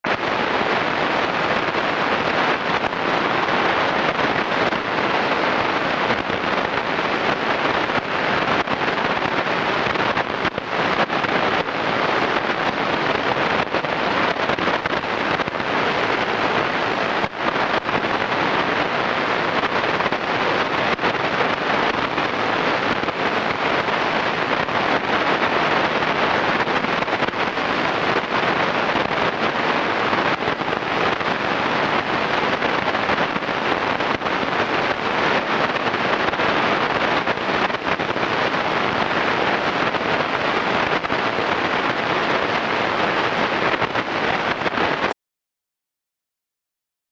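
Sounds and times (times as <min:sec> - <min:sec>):
shortwave radio static: 0:00.0 - 0:45.2.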